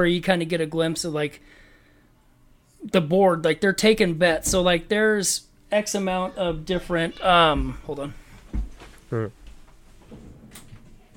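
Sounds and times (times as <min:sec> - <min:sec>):
speech: 0:00.0 - 0:01.6, 0:02.8 - 0:09.4
door shutting with a creaking squeal: 0:10.0 - 0:11.1.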